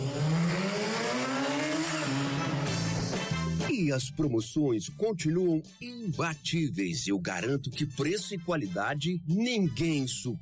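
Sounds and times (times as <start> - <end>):
car engine revving and accelerating: 0.0 - 3.7
speech: 3.9 - 10.4.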